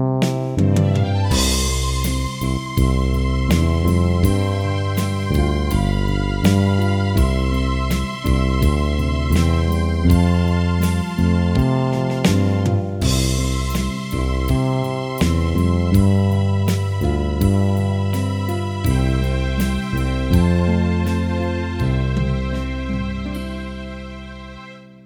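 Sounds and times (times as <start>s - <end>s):
broken chord accompaniment: 0.2s - 25.0s.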